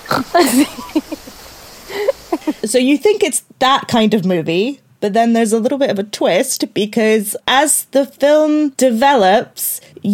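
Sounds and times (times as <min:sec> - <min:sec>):
voice imitating a pig snorting and oinking: 0:00.0 - 0:00.6
speech: 0:00.4 - 0:01.2, 0:02.7 - 0:10.1.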